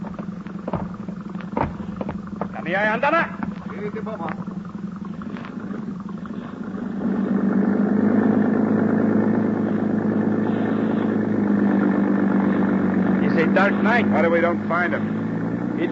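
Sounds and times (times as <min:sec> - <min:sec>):
police motorboat engine running at a harbor police dock: 0:00.0 - 0:15.9
speech: 0:02.7 - 0:04.5, 0:13.5 - 0:15.2, 0:15.8 - 0:15.9.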